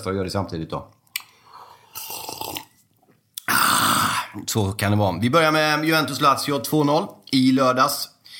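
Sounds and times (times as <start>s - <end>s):
speech: 0.0s - 1.0s, 4.4s - 8.1s
quiet slurping sip of coffee: 1.5s - 2.9s.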